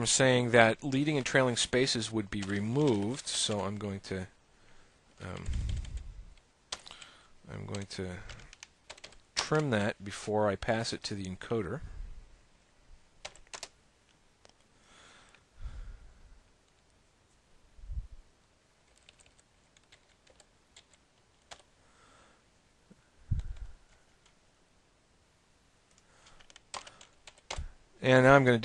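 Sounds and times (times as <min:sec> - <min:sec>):
speech: 0:00.0 - 0:04.4, 0:05.2 - 0:05.9, 0:07.5 - 0:08.4, 0:09.5 - 0:11.9, 0:28.0 - 0:28.6
quick typing on a computer keyboard: 0:02.3 - 0:03.8, 0:05.2 - 0:06.0, 0:06.7 - 0:09.7, 0:13.2 - 0:13.8, 0:18.9 - 0:21.7, 0:25.9 - 0:27.7.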